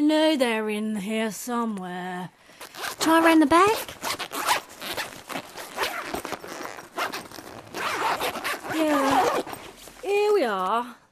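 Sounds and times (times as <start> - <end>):
speech: 0.1 - 4.2, 8.8 - 11.0
zips on trouser pockets being opened: 2.6 - 3.0, 3.7 - 10.1
fabric rustling: 2.6 - 10.9.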